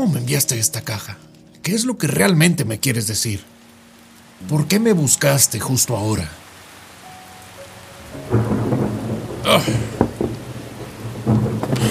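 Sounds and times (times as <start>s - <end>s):
speech: 0.0s - 3.6s, 4.4s - 6.4s, 9.5s - 9.9s
heavy rain pouring: 0.0s - 11.8s
deep thunder rumbles with sharp cracks and crashes: 8.1s - 11.8s
person exclaiming: 9.4s - 9.9s.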